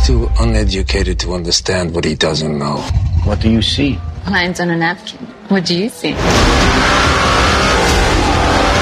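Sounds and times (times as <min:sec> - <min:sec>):
speech: 0:00.1 - 0:07.0
Lamborghini GT sports car engine roar: 0:06.4 - 0:08.7.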